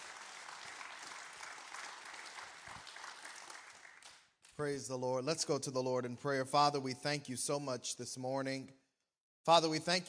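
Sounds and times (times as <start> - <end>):
audience clapping in praise: 0.0 - 4.6
speech: 4.6 - 8.8, 9.5 - 10.0.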